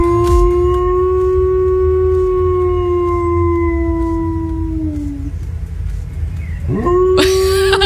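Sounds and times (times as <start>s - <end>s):
low rumble: 0.0s - 7.8s
border collie in a garden howling, imitating a fire siren: 0.8s - 5.3s
laughter: 7.2s - 7.8s.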